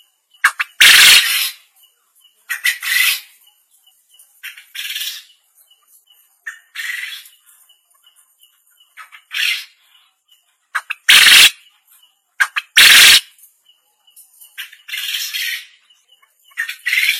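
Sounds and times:
quail calling: 0:00.4 - 0:01.6, 0:02.5 - 0:03.4, 0:04.4 - 0:05.3, 0:06.4 - 0:07.4, 0:09.0 - 0:09.8, 0:10.7 - 0:11.6, 0:12.4 - 0:13.3, 0:14.6 - 0:15.8, 0:16.5 - 0:17.1.

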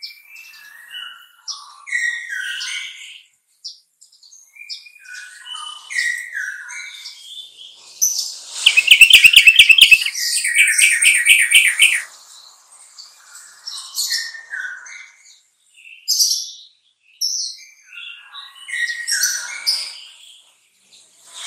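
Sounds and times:
sooty-headed bulbul trucukan song: 0:08.6 - 0:12.1.

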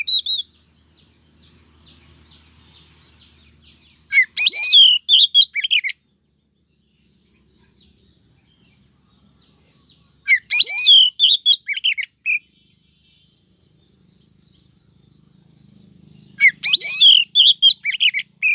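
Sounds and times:
female Oriental magpie-robin calling: 0:00.0 - 0:00.7, 0:03.3 - 0:06.0, 0:09.5 - 0:12.8, 0:16.2 - 0:18.5.

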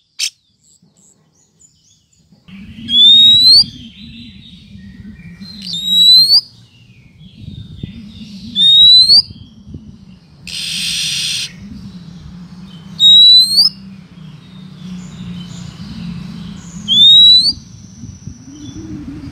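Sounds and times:
steady low hum: 0:02.1 - 0:19.2
female Oriental magpie-robin giving clear thin rising whistle: 0:02.5 - 0:06.6, 0:07.7 - 0:09.6, 0:10.5 - 0:12.1, 0:12.9 - 0:13.9, 0:16.8 - 0:19.2
speech: 0:09.2 - 0:09.5.

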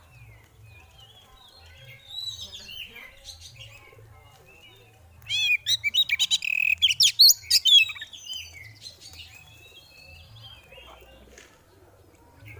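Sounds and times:
female oriental magpie-robin twittering: 0:05.3 - 0:08.5.

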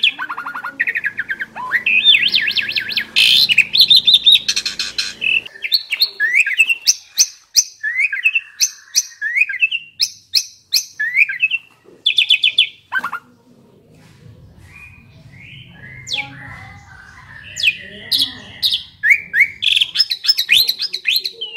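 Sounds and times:
Asian pied starling song: 0:00.0 - 0:21.5
low rumble: 0:13.7 - 0:20.0.

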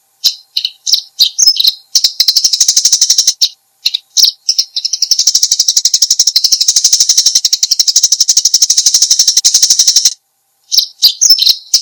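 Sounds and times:
Eurasian tree sparrow chirps: 0:00.2 - 0:11.8.

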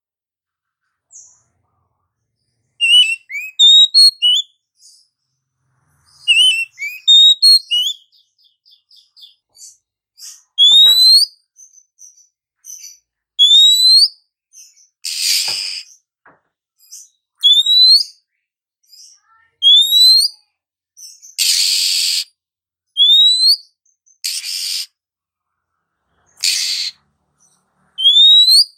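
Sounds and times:
female Oriental magpie-robin calling with rising whistled slurs: 0:02.8 - 0:05.1, 0:06.1 - 0:16.0, 0:16.8 - 0:18.2, 0:18.8 - 0:22.4, 0:23.0 - 0:25.0, 0:26.3 - 0:28.7.

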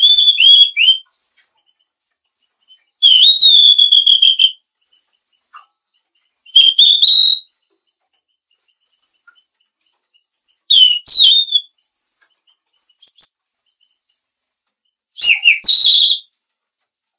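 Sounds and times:
mangrove blue flycatcher calling with clear high whistled notes: 0:03.0 - 0:04.6, 0:06.5 - 0:07.5, 0:10.7 - 0:11.7, 0:15.2 - 0:16.3.

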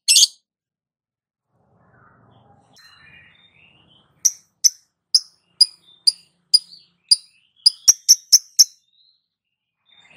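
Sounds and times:
lovebird chirping: 0:00.0 - 0:00.4, 0:02.8 - 0:10.1.

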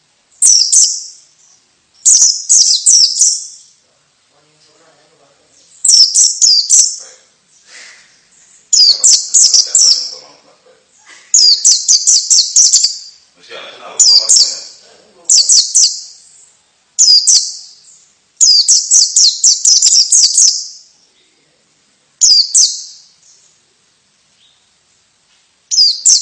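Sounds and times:
female white-eye chirping: 0:00.0 - 0:03.8, 0:05.5 - 0:13.4, 0:14.0 - 0:21.0, 0:22.2 - 0:23.7, 0:25.7 - 0:26.2.

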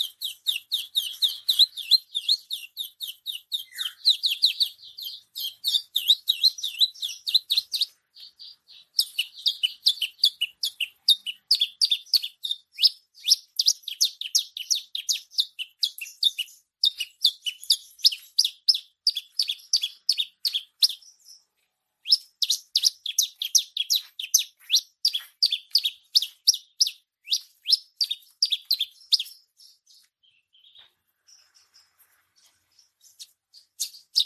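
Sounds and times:
bushlark singing continuously: 0:00.0 - 0:34.2.

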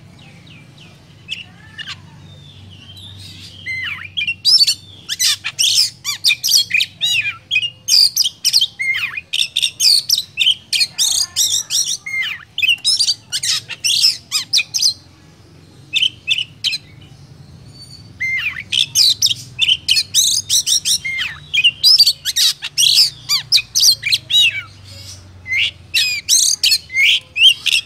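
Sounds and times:
oriental magpie-robin song used as a trapping lure: 0:00.0 - 0:27.8.

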